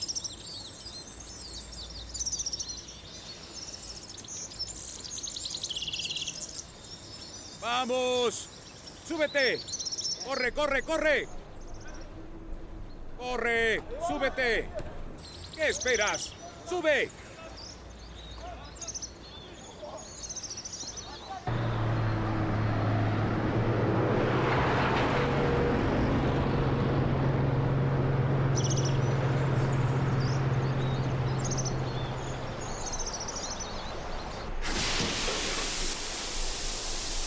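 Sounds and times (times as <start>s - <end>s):
birds chirping: 0.0s - 23.9s, 25.8s - 36.0s
speech: 7.6s - 8.5s, 9.1s - 11.4s, 13.2s - 14.9s, 15.6s - 17.2s
old car engine rumbling: 10.5s - 15.2s, 21.5s - 24.7s, 25.6s - 34.6s
hissing noise: 34.5s - 37.2s.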